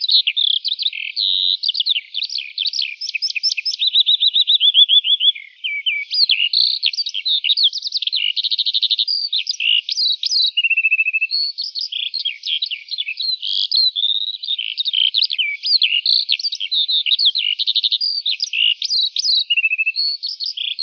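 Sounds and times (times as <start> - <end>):
lark singing: 0.0 - 20.8.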